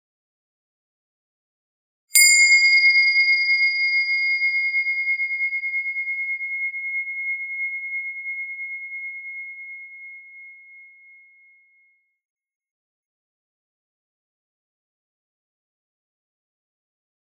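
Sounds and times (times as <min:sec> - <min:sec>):
meditation bell ringing: 0:02.2 - 0:11.8.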